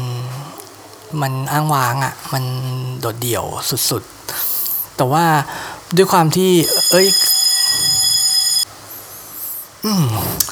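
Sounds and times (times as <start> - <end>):
hiss: 0.0 - 10.5
speech: 1.1 - 4.4, 5.0 - 7.4
fire alarm electronic tone ringing during a test: 6.6 - 8.7.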